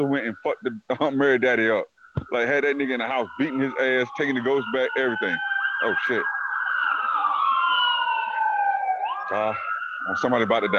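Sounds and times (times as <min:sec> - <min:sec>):
speech: 0:00.0 - 0:06.4, 0:09.3 - 0:10.7
emergency vehicle siren wailing as it passes: 0:02.2 - 0:10.7.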